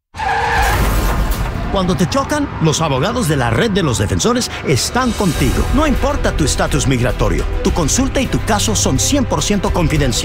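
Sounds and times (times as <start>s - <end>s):
car tires skidding and squealing: 0.1s - 5.0s
speech: 1.7s - 10.2s.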